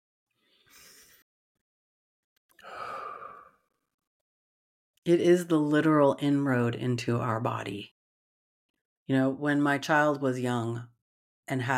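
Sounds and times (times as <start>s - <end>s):
slow deep breath drawn in: 2.6s - 3.6s
longer audible exhale like a sigh: 2.6s - 3.7s
speech: 5.0s - 8.0s, 9.1s - 10.9s, 11.5s - 11.7s.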